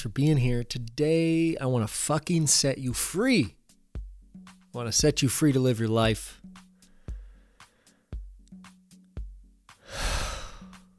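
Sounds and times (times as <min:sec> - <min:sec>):
speech: 0:00.0 - 0:03.6, 0:04.7 - 0:06.6
big loud breath: 0:06.6 - 0:08.2, 0:09.8 - 0:10.9.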